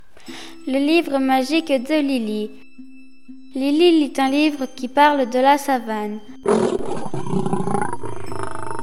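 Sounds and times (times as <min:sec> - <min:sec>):
speech: 0:00.7 - 0:02.6, 0:03.6 - 0:07.6
lion roaring as a story sound effect: 0:06.4 - 0:08.8.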